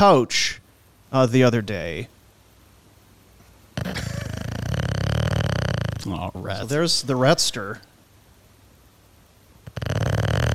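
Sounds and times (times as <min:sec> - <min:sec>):
speech: 0:00.0 - 0:02.2, 0:06.1 - 0:07.9
person snoring while asleep on couch: 0:03.8 - 0:06.6, 0:09.7 - 0:10.5.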